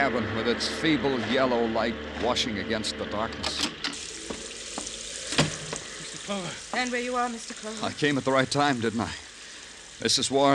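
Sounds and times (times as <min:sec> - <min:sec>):
speech: 0:00.0 - 0:03.7, 0:06.3 - 0:09.2, 0:10.0 - 0:10.5
louder rain drops and splashes: 0:04.0 - 0:10.5
steady rain falling at night: 0:04.0 - 0:10.5.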